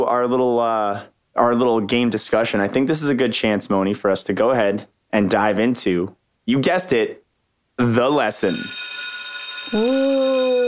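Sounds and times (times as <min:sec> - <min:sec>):
speech: 0:00.0 - 0:07.2, 0:07.8 - 0:08.8, 0:09.7 - 0:10.6
school bell ringing: 0:08.5 - 0:10.6.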